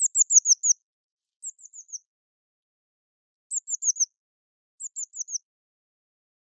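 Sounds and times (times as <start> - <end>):
Eurasian blue tit Cyanistes caeruleus giving thin high falling notes: 0.0 - 0.8, 1.4 - 2.0, 3.5 - 4.1, 4.8 - 5.4.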